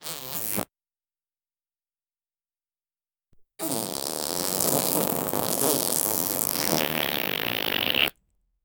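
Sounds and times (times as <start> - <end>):
ultra short dry fart: 3.6 - 8.2.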